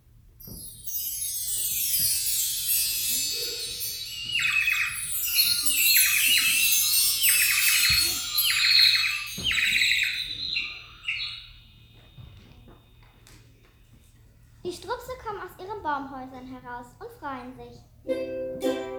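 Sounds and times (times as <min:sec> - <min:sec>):
birds chirping and twittering with trills: 0:00.9 - 0:13.2
speech: 0:16.2 - 0:18.8.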